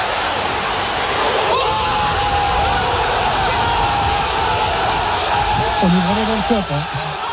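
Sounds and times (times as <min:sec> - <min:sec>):
football supporters in the kop cheering a goal in a stadium: 0:00.0 - 0:07.3
speech: 0:05.8 - 0:07.0.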